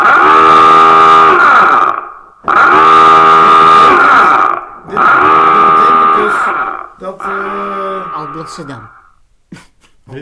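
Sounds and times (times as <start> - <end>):
loud alarm with harsh buzzing blasts: 0.0 - 9.3
speech: 8.6 - 9.0.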